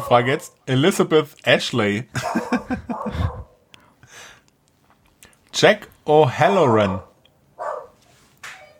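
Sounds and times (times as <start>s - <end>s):
speech: 0.1s - 3.4s, 5.6s - 7.1s
dog barking: 2.2s - 3.6s, 6.4s - 8.0s.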